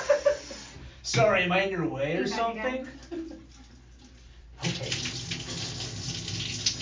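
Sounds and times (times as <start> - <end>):
speech: 1.2 - 3.2
water gushing from a tap: 4.6 - 6.8.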